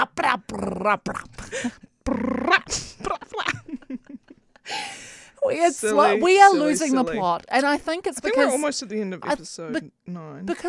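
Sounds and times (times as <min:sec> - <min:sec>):
speech: 0:00.3 - 0:02.9, 0:05.5 - 0:10.6
person imitating a growling dog: 0:02.0 - 0:02.7.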